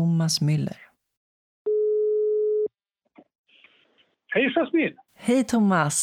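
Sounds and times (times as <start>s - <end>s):
speech: 0.0s - 0.9s, 4.4s - 6.0s
telephone ringing tone: 1.7s - 2.7s.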